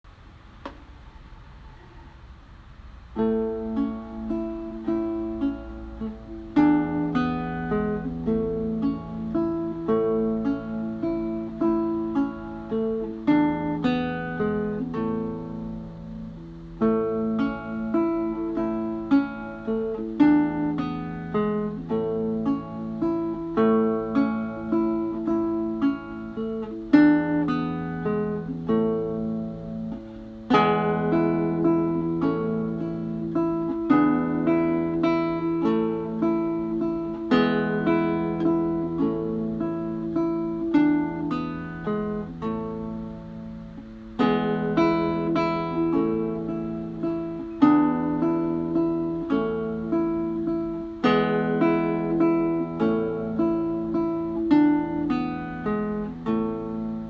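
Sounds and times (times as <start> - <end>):
guitar playing a waltz: 3.1 - 57.0.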